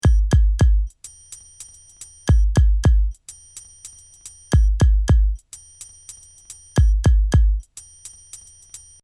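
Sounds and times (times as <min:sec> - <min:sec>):
kick drum: 0:00.0 - 0:01.0, 0:02.3 - 0:03.2, 0:04.5 - 0:05.4, 0:06.8 - 0:07.7
wood triangle: 0:00.0 - 0:09.0.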